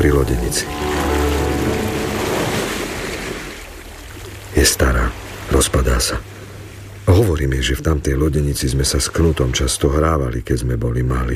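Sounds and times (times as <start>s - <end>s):
speech: 0.0s - 1.1s, 4.6s - 6.4s, 7.1s - 11.3s
waves lapping along the shoreline of a fjord: 0.2s - 7.7s.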